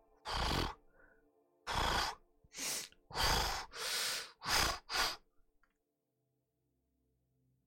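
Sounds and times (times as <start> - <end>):
human voice imitating loud breathing and sniffing of an unseen creature: 0.2 - 0.8, 1.7 - 5.2.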